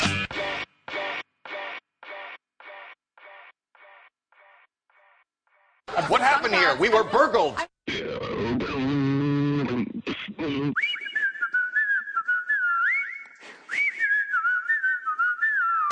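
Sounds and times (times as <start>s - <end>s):
laughter: 5.9s - 7.7s
speech: 6.0s - 7.7s
person humming: 7.9s - 10.9s
person whistling a lilting tune: 10.8s - 15.9s.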